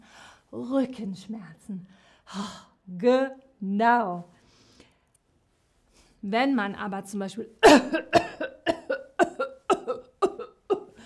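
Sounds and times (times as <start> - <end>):
speech: 0.5 - 4.4, 6.2 - 8.5
person coughing: 7.6 - 11.0.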